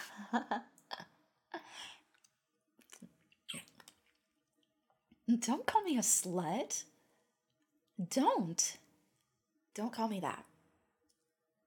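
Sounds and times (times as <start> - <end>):
speech: 0.3 - 0.7, 5.3 - 6.9, 8.0 - 8.8, 9.8 - 10.5
wet mouth smacking and slurping from drooling: 2.8 - 4.2.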